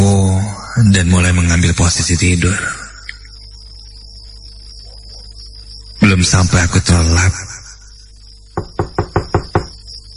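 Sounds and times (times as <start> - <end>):
faint steady hum: 0.0 - 10.1
speech: 1.0 - 2.8, 6.1 - 7.6
knocking on a wooden bedroom door: 8.6 - 9.8.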